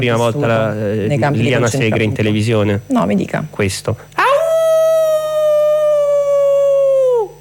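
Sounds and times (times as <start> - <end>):
speech: 0.0 - 4.2
person imitating a wolf's howl: 4.2 - 7.3.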